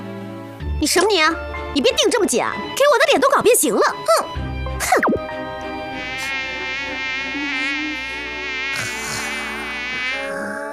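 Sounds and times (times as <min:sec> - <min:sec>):
speech: 0:00.8 - 0:05.0
mosquito's high whining buzz: 0:05.6 - 0:10.6.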